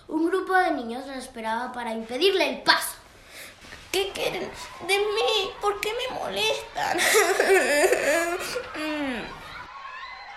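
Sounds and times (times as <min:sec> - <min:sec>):
speech: 0:00.2 - 0:03.0, 0:03.9 - 0:09.4
laughter: 0:06.6 - 0:10.3
girl crying with sobbing wails: 0:06.7 - 0:09.4.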